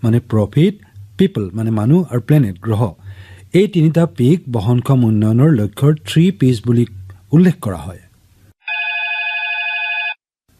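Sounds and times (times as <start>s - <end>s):
speech: 0.0s - 8.0s
telephone ringing with a bright electronic trill for an incoming listener call: 8.6s - 10.3s.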